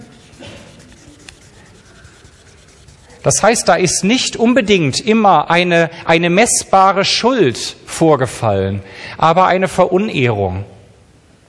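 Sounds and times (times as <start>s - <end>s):
pen drawing on a surface: 0.0s - 5.0s
speech: 3.2s - 10.8s.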